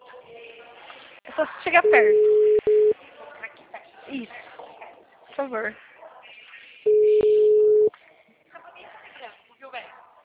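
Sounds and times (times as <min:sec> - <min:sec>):
speech: 0:01.4 - 0:02.4, 0:05.4 - 0:05.9
telephone ringing tone of an outgoing call: 0:01.8 - 0:02.9, 0:06.9 - 0:07.9
faint voices talking on the telephone line: 0:01.8 - 0:05.1, 0:05.9 - 0:08.2.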